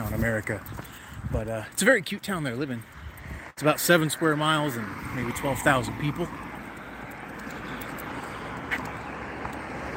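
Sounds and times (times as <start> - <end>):
street traffic rumbling past outdoors: 0.0 - 9.9
speech: 0.2 - 3.0, 3.6 - 6.4.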